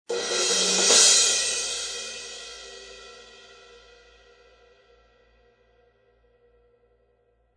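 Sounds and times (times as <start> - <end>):
fast cymbal crash: 0.1 - 4.6.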